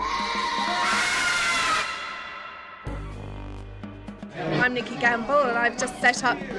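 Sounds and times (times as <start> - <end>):
crowd of children screaming and shouting at a children's bookshop in Chelmsford: 0.0 - 2.9
speech: 4.4 - 6.5.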